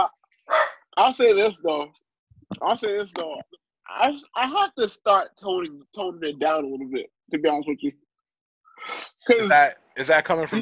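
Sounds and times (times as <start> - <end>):
dog barking: 0.5 - 0.8
speech: 1.0 - 2.0, 2.6 - 8.0, 8.8 - 10.6.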